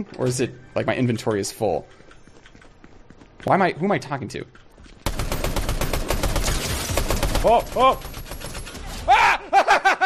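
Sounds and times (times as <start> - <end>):
speech: 0.0 - 2.0, 3.4 - 5.0, 7.4 - 8.1
rapid gunfire from a rare gun in a video game: 5.0 - 9.0
laughter: 9.2 - 10.0.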